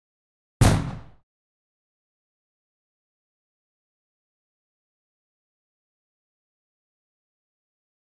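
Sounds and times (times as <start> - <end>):
fireworks: 0.6 - 1.2
thunderflash bang: 0.6 - 1.2.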